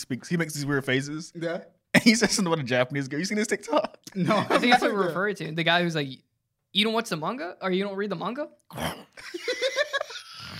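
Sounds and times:
speech: 0.0s - 9.8s
laughter: 3.7s - 5.2s, 9.2s - 10.3s
person imitating a growl: 8.7s - 9.2s.

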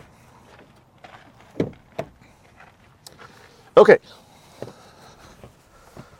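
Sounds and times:
truck front door opening: 0.6s - 2.3s
speech: 3.8s - 4.2s.

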